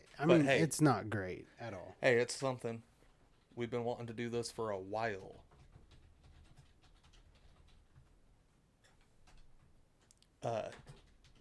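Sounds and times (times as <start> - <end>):
low noise: 0.0 - 11.3
speech: 0.2 - 2.9, 3.6 - 5.4, 10.4 - 10.9
keyboard typing: 5.0 - 8.2, 8.8 - 11.3.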